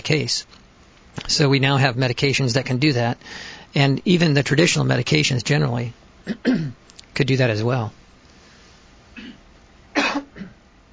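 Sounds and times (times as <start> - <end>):
speech: 0.0 - 8.0
person coughing: 6.3 - 6.8, 9.2 - 10.6.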